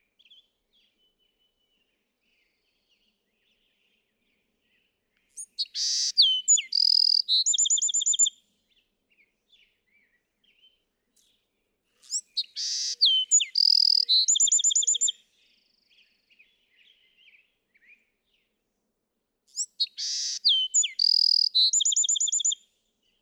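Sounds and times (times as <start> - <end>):
Bewick's wren song: 5.2 - 8.4, 12.0 - 15.8, 19.5 - 23.2.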